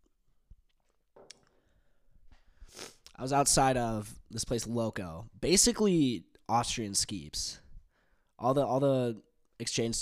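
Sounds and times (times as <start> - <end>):
sipping coffee from a cup: 2.6 - 3.2
speech: 3.2 - 7.6, 8.4 - 10.0.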